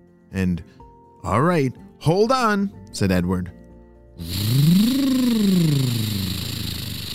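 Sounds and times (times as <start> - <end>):
speech: 0.3 - 3.6, 4.2 - 4.6
monster truck engine revving: 4.2 - 7.1
steady hiss: 4.2 - 7.1.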